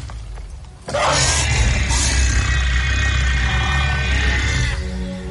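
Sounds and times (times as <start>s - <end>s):
giant fantasy video game creature roaring and growling: 0.9s - 5.0s.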